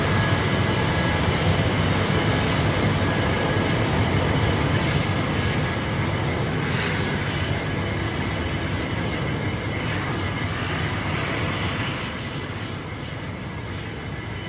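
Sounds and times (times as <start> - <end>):
jet airplanes roaring near airport runways: 0.0 - 14.4.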